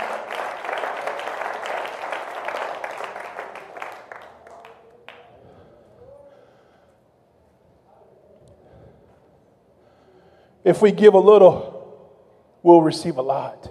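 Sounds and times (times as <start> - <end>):
audience applauding: 0.0 - 5.5
speech: 10.6 - 11.7, 12.6 - 13.6.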